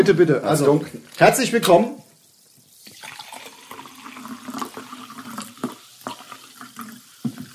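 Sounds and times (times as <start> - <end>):
speech: 0.0 - 2.0
liquid pouring into a glass: 2.2 - 7.5.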